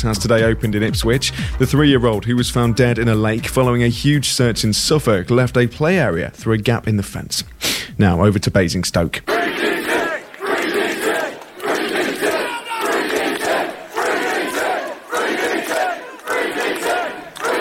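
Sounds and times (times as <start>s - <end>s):
speech: 0.0s - 9.9s
crowd of demonstrators shouting and chanting outside a police centre: 9.2s - 17.6s.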